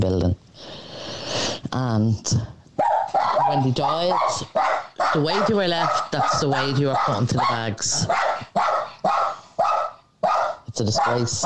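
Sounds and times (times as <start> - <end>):
speech: 0.0 - 0.8, 1.7 - 2.6, 3.4 - 8.4, 10.8 - 11.4
dog barking: 2.8 - 11.4.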